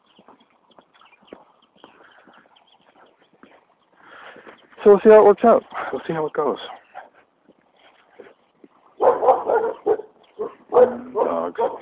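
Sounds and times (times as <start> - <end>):
speech: 4.8 - 6.8
dogs barking and yelping: 6.8 - 11.8.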